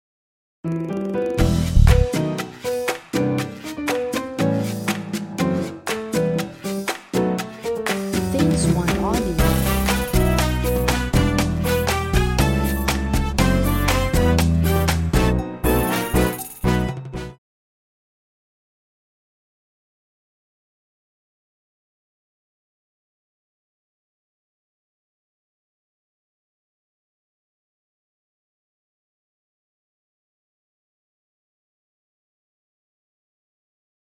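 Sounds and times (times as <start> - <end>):
Latin jazz song: 0.7 - 17.4.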